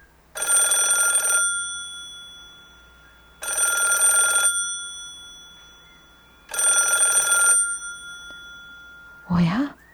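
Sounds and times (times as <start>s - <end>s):
telephone bell ringing with a bright metallic trill: 0.4s - 9.6s
speech: 9.3s - 9.7s.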